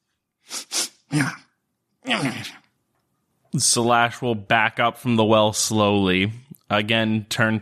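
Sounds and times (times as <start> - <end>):
person vocally imitating a creature sniffing the air: 0.4 - 1.1
person vocally imitating a small creature sneezing: 0.5 - 2.7
speech: 1.1 - 1.4, 2.1 - 2.6, 3.6 - 7.5.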